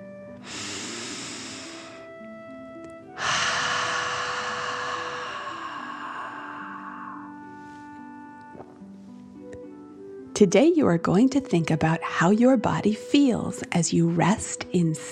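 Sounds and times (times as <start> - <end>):
deep breathing in and out for a relaxation exercise: 0.4 - 2.3, 3.1 - 8.4
sustained musical tones: 5.2 - 8.9
speech: 10.4 - 15.1.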